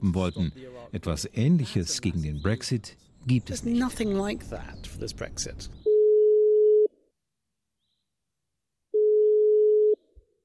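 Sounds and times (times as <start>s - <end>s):
speech: 0.0s - 5.8s
telephone dial tone: 9.0s - 10.0s.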